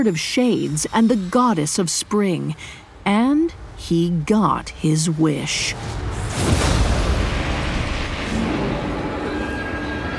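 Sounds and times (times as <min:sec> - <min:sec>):
speech: 0:00.0 - 0:06.7
explosion: 0:05.8 - 0:10.0.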